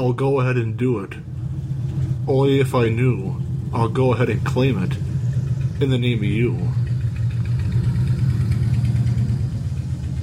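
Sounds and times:
speech: 0:00.0 - 0:01.3, 0:02.3 - 0:05.1, 0:05.8 - 0:06.8
motorcycle engine idling: 0:00.0 - 0:10.2.

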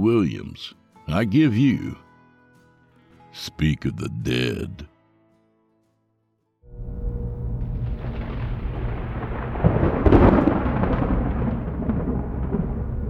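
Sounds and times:
speech: 0:00.0 - 0:02.0, 0:03.3 - 0:04.9
low rumbling thunder: 0:06.8 - 0:13.0.

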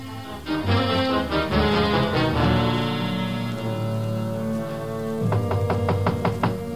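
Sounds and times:
loud sustained musical score: 0:00.0 - 0:06.7
knocking on a locked door: 0:05.2 - 0:06.7.

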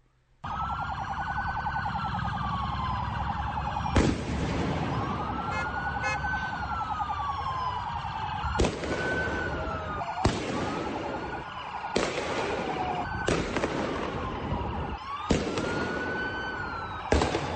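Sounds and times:
emergency siren wailing: 0:00.4 - 0:17.5
firework bangs: 0:03.9 - 0:05.2, 0:08.5 - 0:11.3, 0:11.9 - 0:14.6, 0:15.3 - 0:16.2, 0:17.1 - 0:17.5.

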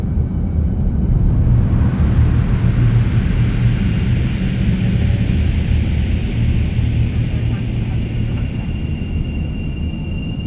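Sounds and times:
rumbling engines of a spacecraft taking off: 0:00.0 - 0:10.4.

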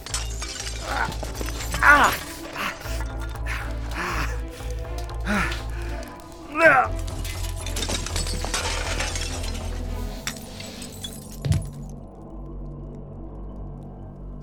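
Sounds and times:
glass shards scraping: 0:00.0 - 0:03.9, 0:07.0 - 0:11.8
broken window glass crunching and clinking in a depot: 0:00.0 - 0:12.0.

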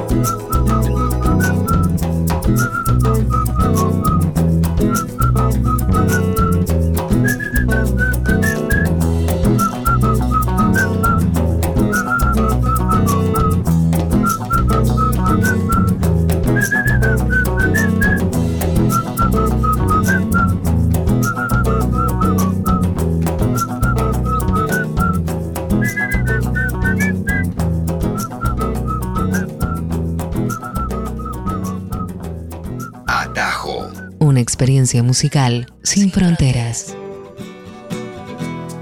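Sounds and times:
bright whistled melody: 0:00.0 - 0:34.2
steady full musical backing: 0:00.0 - 0:38.8
speech: 0:00.2 - 0:00.6, 0:34.6 - 0:37.0.

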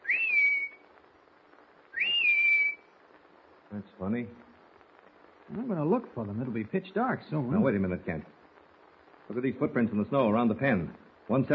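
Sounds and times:
person whistling a signal call outdoors in the snow near a raccoon pen: 0:00.0 - 0:00.8, 0:01.9 - 0:02.8
speech: 0:03.7 - 0:04.5, 0:05.5 - 0:08.4, 0:09.3 - 0:11.5.

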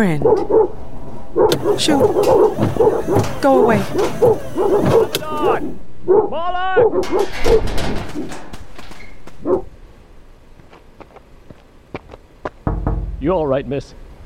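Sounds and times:
speech: 0:00.0 - 0:08.4, 0:09.4 - 0:09.7, 0:13.2 - 0:14.0
dogs barking and yelping: 0:00.2 - 0:08.5, 0:09.3 - 0:09.8.

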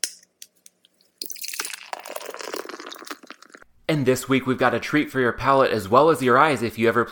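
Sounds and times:
triple dry hop double IPA being poured into a glass: 0:01.2 - 0:03.6
speech: 0:03.9 - 0:07.0.

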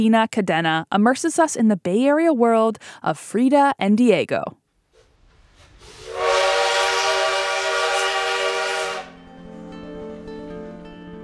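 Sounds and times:
speech: 0:00.0 - 0:04.6
loud sustained train horn blaring: 0:05.9 - 0:09.4.

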